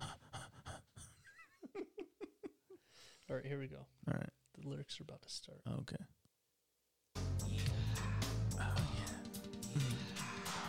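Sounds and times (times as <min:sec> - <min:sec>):
person imitating heavy breathing: 0:00.0 - 0:01.3, 0:07.3 - 0:10.6
quick rhythmic panting puffs: 0:00.0 - 0:01.3, 0:07.2 - 0:10.6
speech: 0:03.3 - 0:06.2.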